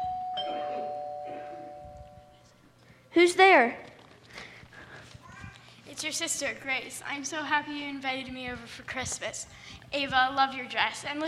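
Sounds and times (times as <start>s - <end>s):
doorbell chiming at a house: 0.0s - 2.3s
speech: 3.1s - 3.9s, 6.0s - 11.2s.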